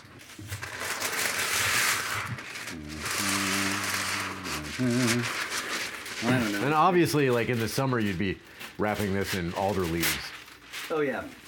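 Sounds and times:
parchment paper crinkling and rustling while being unrolled and handled: 0.0s - 11.4s
low voiced murmurs: 2.4s - 6.9s
speech: 4.8s - 5.4s, 6.2s - 10.3s, 10.9s - 11.4s.

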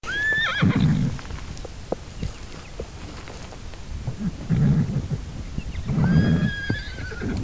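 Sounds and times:
wild horses whinnying in the Virginia range: 0.0s - 1.3s, 4.1s - 7.4s
wild horse hooves clopping over uneven ground up a hill: 0.0s - 7.4s.

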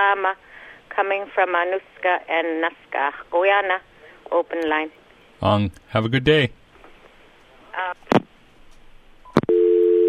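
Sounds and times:
speech: 0.0s - 6.6s, 7.8s - 8.0s
telephone line tones and clicks: 9.3s - 10.0s
steady loud telephone dial tone: 9.4s - 10.0s.

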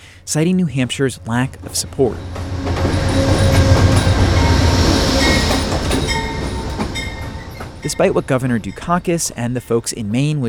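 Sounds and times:
speech: 0.3s - 3.5s, 7.8s - 10.4s
faint metallic squeals from train wheels: 0.7s - 10.4s
passing commuter train clickety-clack on rails: 1.1s - 10.2s.

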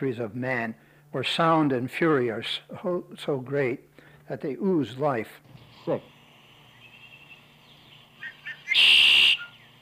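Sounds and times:
speech: 0.0s - 6.1s, 8.7s - 8.9s
Red-winged blackbird song with loud harsh buzzy trill and thin whistle: 6.5s - 9.8s.

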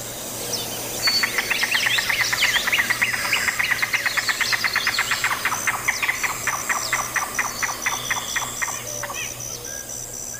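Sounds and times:
faint birdsong: 0.0s - 10.3s
yellow-billed cuckoo kowlp call: 1.0s - 10.3s.

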